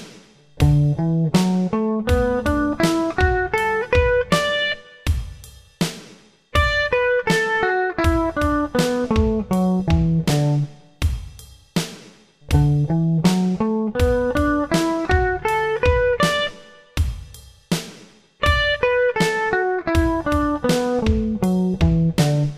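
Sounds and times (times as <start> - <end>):
D major pentatonic scale played: 0.6 - 4.8, 6.6 - 10.7, 12.5 - 16.6, 18.4 - 22.5.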